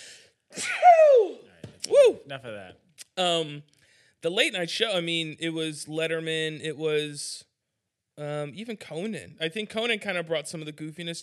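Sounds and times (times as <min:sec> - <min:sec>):
person sneezing: 0:00.0 - 0:01.4
speech: 0:02.3 - 0:07.5, 0:08.2 - 0:11.2.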